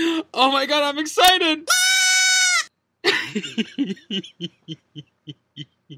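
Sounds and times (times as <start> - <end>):
speech: 0.2 - 1.9, 3.4 - 5.9
goat bleating loudly: 1.7 - 2.7
laughter: 3.1 - 5.0.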